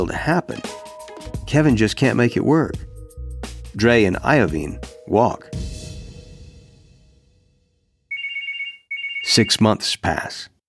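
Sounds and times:
speech: 0.0 - 0.8, 1.5 - 2.8, 3.8 - 5.8, 9.3 - 10.5
telephone ringing with an electronic tone: 8.1 - 9.7.

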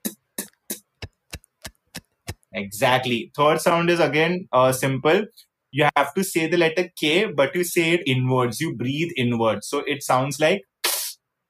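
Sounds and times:
beatboxed hi-hat T sound made with the mouth: 0.0 - 2.5, 10.8 - 11.2
speech: 2.5 - 10.7.

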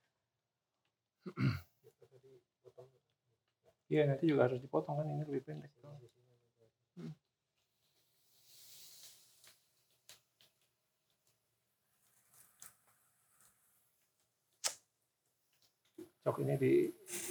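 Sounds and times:
speech: 3.9 - 6.2, 7.0 - 7.2, 16.2 - 17.3
aerosol spray can hissing: 8.4 - 9.6, 16.9 - 17.3.

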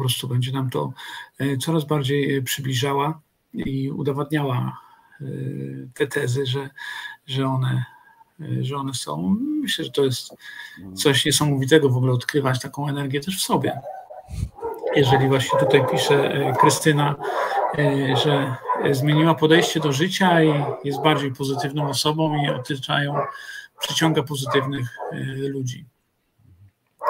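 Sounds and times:
speech: 0.0 - 25.9
dog barking: 13.8 - 25.2.

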